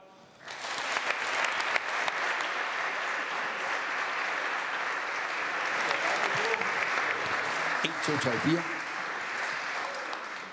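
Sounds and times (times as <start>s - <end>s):
large audience applause: 0.4s - 10.5s
speech: 7.8s - 8.8s.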